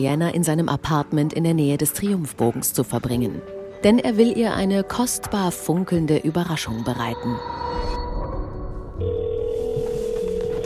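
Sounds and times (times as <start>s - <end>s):
speech: 0.0s - 7.6s
telephone line dialing tones: 9.0s - 10.6s.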